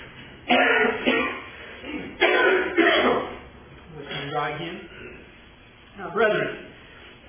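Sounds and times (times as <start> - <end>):
harsh coughs ending in a throaty rasp: 0.4 - 3.4
speech: 6.1 - 6.6.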